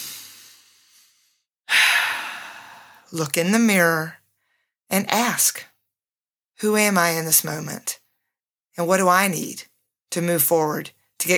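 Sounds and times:
deep breath: 0.0s - 3.1s
speech: 3.1s - 4.2s, 4.9s - 5.7s, 6.6s - 8.0s, 8.8s - 11.3s.

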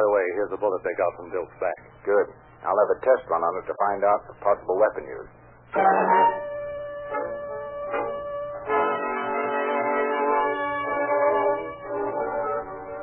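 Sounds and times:
speech: 0.0s - 6.4s
steam train whistle blasts: 5.8s - 12.4s.

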